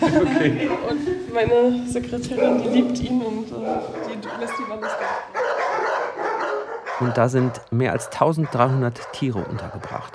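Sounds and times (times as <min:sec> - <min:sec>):
laughter: 0:00.0 - 0:01.3
speech: 0:00.0 - 0:05.9, 0:07.0 - 0:10.1
dog barking and yelping: 0:02.2 - 0:10.1.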